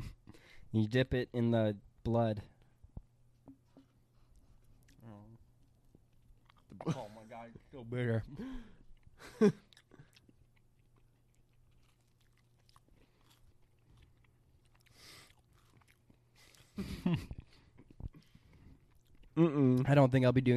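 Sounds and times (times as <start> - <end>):
speech: 0.7 - 2.5, 6.8 - 9.6, 16.8 - 17.4, 19.4 - 20.5
chewing bread at a Passover meal: 4.1 - 6.8, 8.7 - 19.4.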